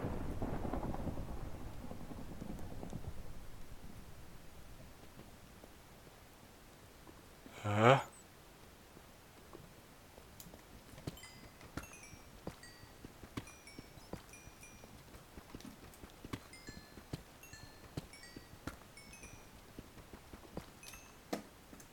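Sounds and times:
deep rolling rumble of thunder: 0.0s - 4.9s
quiet hiss: 0.0s - 21.9s.

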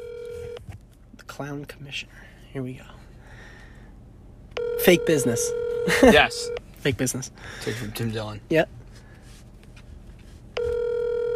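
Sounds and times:
telephone ringback tone from an unanswered call: 0.0s - 0.6s, 4.6s - 6.6s, 10.6s - 11.3s
speech: 1.4s - 3.0s, 4.8s - 8.8s.

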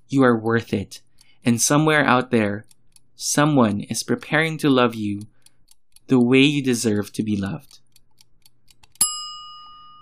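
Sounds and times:
speech: 0.1s - 5.3s, 6.1s - 7.8s
bright bell ding: 9.0s - 10.0s.

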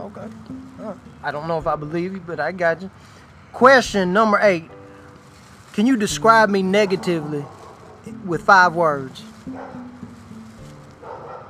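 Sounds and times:
speech: 0.1s - 4.8s, 5.8s - 9.8s
dog barking: 6.8s - 8.1s, 9.5s - 9.9s, 11.0s - 11.4s.

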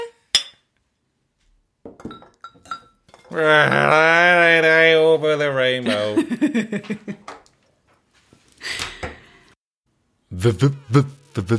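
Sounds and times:
beer glasses clinking in a toast: 2.0s - 3.3s
speech: 3.3s - 7.3s, 10.4s - 11.5s
laughter: 5.8s - 7.3s.

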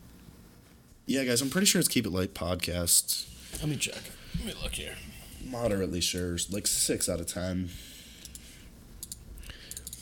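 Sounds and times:
low hum: 0.0s - 10.0s
speech: 1.1s - 7.9s
computer mouse clicks: 8.2s - 10.0s.

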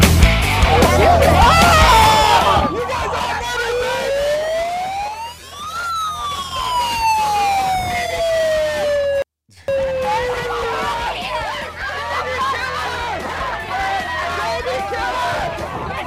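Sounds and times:
protest crowd shouting and screeching: 0.2s - 16.0s
laughter: 0.4s - 7.2s, 9.7s - 16.0s
siren wailing: 0.6s - 11.6s.

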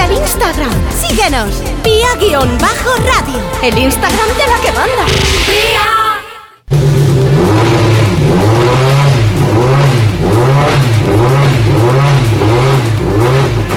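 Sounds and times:
speech: 0.4s - 6.2s
hybrid Rally1 rally car engine revving: 6.7s - 13.7s.

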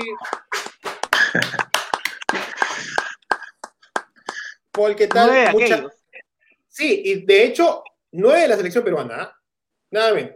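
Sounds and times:
hands clapping in applause: 0.0s - 5.8s
speech: 0.1s - 0.4s, 1.3s - 1.6s, 4.8s - 6.0s, 6.8s - 10.3s
laughter: 0.7s - 4.6s.

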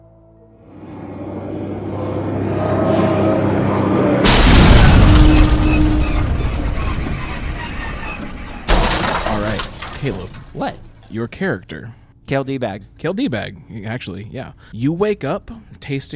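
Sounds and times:
spaceship mechanical engine drone: 0.6s - 6.1s
sharp blast: 4.2s - 7.1s
spaceship explosion: 4.2s - 10.4s
spaceship collision crashing impact: 4.2s - 11.1s
roaring crackling debris: 4.2s - 11.2s
speech: 11.2s - 16.1s.

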